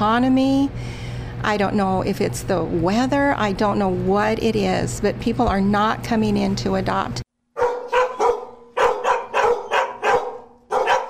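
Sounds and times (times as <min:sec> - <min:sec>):
speech: 0:00.0 - 0:07.2
several dogs barking in outdoor fenced-in cages at an animal shelter: 0:07.6 - 0:11.0.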